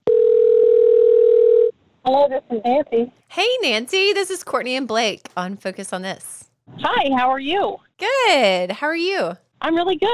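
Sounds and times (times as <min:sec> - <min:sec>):
steady telephone tone as a phone call connects: 0:00.0 - 0:01.7
speech: 0:02.1 - 0:10.1.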